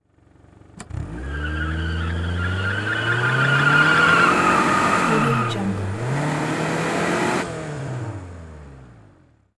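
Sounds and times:
automobile skid and squeal: 0.8s - 7.9s.

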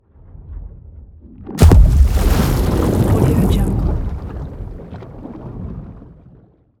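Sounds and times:
explosive water hit: 1.6s - 6.3s.

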